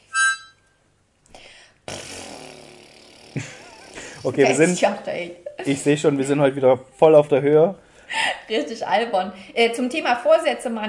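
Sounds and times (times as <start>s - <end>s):
squeaky rough blatting fart noise: 1.9s - 4.5s
speech: 3.4s - 3.6s, 4.2s - 7.8s, 8.5s - 10.8s
laughter: 3.4s - 4.8s.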